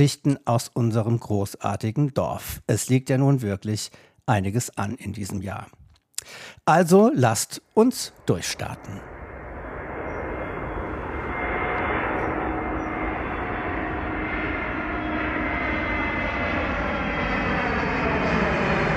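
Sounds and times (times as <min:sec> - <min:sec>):
speech: 0:00.0 - 0:09.2
airplane engine roar from a landing aircraft: 0:07.2 - 0:18.9.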